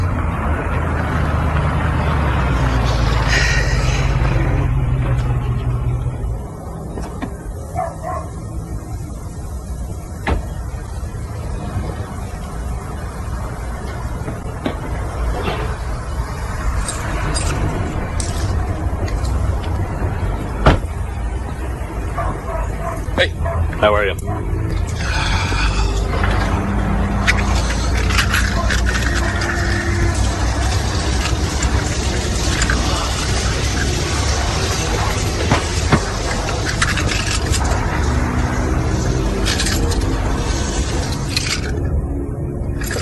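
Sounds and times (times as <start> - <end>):
heavy truck engine rumbling and idling: 0.0 - 43.0
dog barking: 7.7 - 8.4, 22.2 - 24.5.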